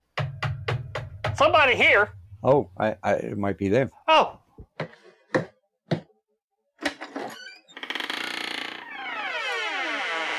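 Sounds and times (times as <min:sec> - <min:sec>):
sharp knocks: 0:00.2 - 0:01.6
speech: 0:01.4 - 0:04.4
long loud creaking door groaning open: 0:07.0 - 0:10.3.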